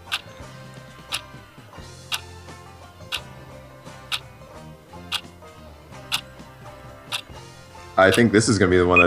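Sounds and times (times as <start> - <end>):
countdown timer clock ticking: 0.0 - 0.3, 1.0 - 1.3, 2.1 - 2.3, 5.1 - 5.3, 7.1 - 7.3, 8.1 - 8.3
speech: 8.0 - 9.0.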